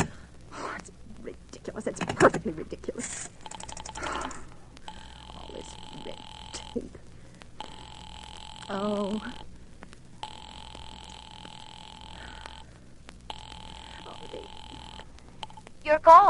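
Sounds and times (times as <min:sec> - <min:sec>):
speech: 0:01.7 - 0:03.4, 0:08.7 - 0:09.4
telephone ring tone through a handset: 0:03.4 - 0:06.9, 0:07.6 - 0:09.5, 0:10.2 - 0:12.7, 0:13.3 - 0:15.6.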